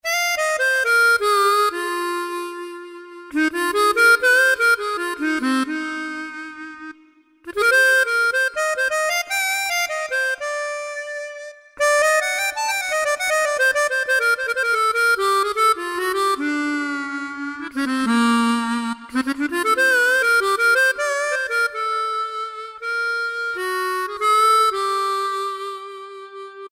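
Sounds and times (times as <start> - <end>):
Yamaha PSR-3000 keyboard harmonica voice: 0.0 - 26.7.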